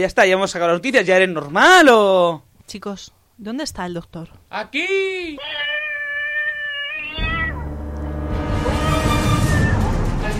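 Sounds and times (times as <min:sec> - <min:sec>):
speech: 0:00.0 - 0:05.7
cat meowing: 0:05.3 - 0:07.7, 0:08.6 - 0:10.0.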